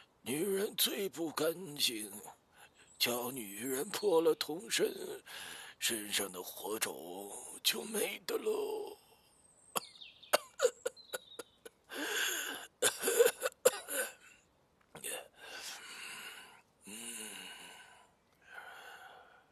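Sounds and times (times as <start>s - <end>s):
speech: 0.2s - 2.4s, 3.0s - 9.0s
narrator coughing loudly with hacking and rasping coughs: 9.8s - 11.4s, 12.8s - 14.2s.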